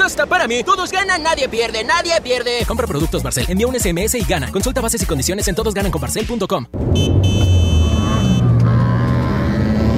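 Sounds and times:
speech: 0.0s - 7.5s
engine of a vehicle overtaking on the right: 6.7s - 9.9s
car horn honking: 6.8s - 9.9s.

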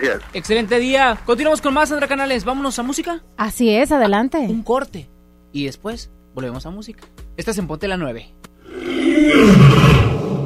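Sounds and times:
speech: 0.0s - 10.2s
lion roaring: 8.6s - 10.4s.

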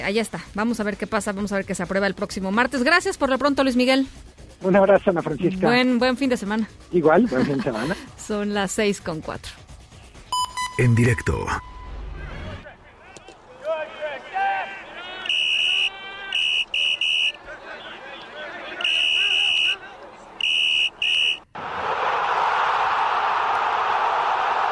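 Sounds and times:
speech: 0.0s - 9.7s, 10.8s - 11.7s
laughter: 7.0s - 8.2s
large stadium crowd roaring at a football match in Croatia: 12.1s - 24.7s
shrill whistle or horn blasts at a football match in Croatia: 15.2s - 17.4s, 18.8s - 19.8s, 20.4s - 21.5s.

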